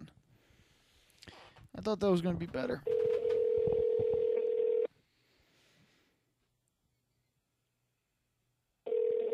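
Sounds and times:
speech: 1.8 - 2.9
phone call tone through a handset speaker: 2.9 - 4.9, 8.9 - 9.3.

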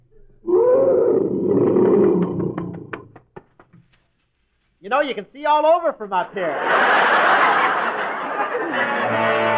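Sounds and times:
huge lion roaring: 0.4 - 3.1
speech: 4.9 - 7.6
laughter: 6.3 - 9.4.

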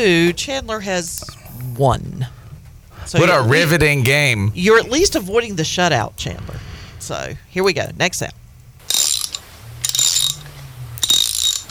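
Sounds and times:
speech: 0.0 - 2.4, 3.1 - 8.4
laughter: 3.2 - 4.5
ratchet wrench clicking: 8.8 - 11.6.

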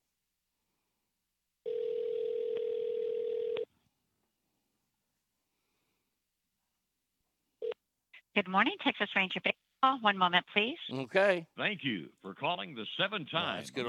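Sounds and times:
telephone ringback tone on a phone line: 1.6 - 3.7
speech: 8.4 - 13.8.

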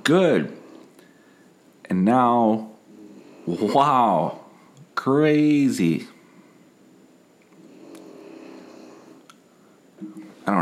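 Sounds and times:
speech: 0.0 - 0.6, 1.9 - 2.7, 3.5 - 4.4, 5.0 - 6.1, 10.0 - 10.5
person snoring: 2.9 - 4.4, 7.6 - 9.3.

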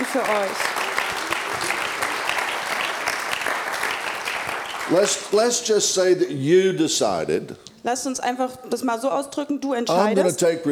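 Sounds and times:
congregation applauding: 0.0 - 5.7
speech: 0.1 - 1.8, 4.9 - 10.7.

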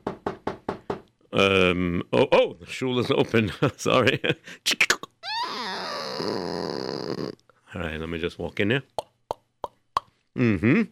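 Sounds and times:
knocking on a wooden door: 0.0 - 1.1
speech: 1.3 - 5.0, 6.2 - 6.8, 8.1 - 9.0, 10.4 - 10.9.

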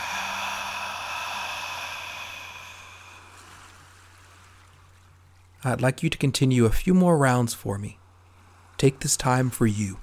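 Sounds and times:
deep exhale during a guided breathing exercise: 0.0 - 3.8
faint constant hum: 0.0 - 10.0
speech: 5.6 - 8.0, 8.8 - 10.0.

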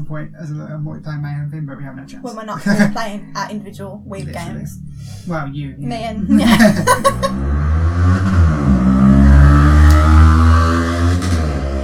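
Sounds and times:
speech: 0.0 - 8.3
laughter: 2.4 - 3.3, 6.3 - 7.5
loud motorcycle engine revving as it passes: 7.0 - 11.8.

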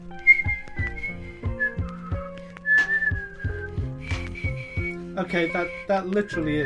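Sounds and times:
steady rhythmic low thumping beat: 0.0 - 5.4
person whistling a short wavering melody: 0.1 - 6.6
speech: 5.2 - 6.6.

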